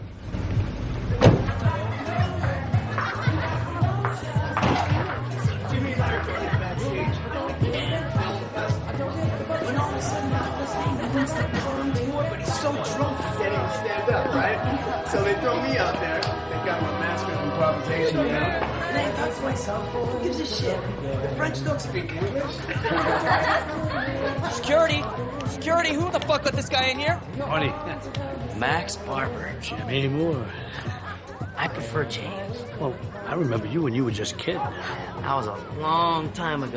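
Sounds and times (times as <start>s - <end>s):
party crowd chatter at a large house: 0.8s - 36.7s
car door opened and thudding shut outside a large house: 1.2s - 1.6s
party guests laughing: 1.6s - 21.0s, 21.8s - 25.5s, 30.3s - 33.9s
speech: 14.8s - 31.0s, 31.6s - 36.7s.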